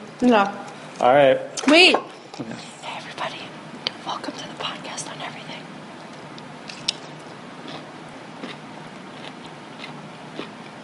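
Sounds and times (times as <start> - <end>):
speech: 0.2 - 2.8
biting and chewing a crunchy pickle: 6.7 - 10.8.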